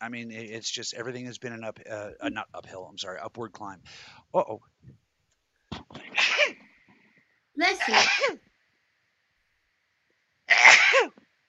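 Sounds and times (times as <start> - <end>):
speech: 0.0 - 5.0, 7.6 - 8.5, 10.5 - 11.2
person sneezing: 6.0 - 6.6, 7.8 - 8.4, 10.5 - 11.2.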